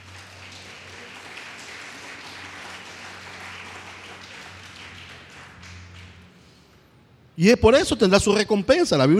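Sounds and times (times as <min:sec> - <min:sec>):
crowd applauding: 0:00.0 - 0:06.7
low hum: 0:00.0 - 0:07.7
speech: 0:07.4 - 0:09.1.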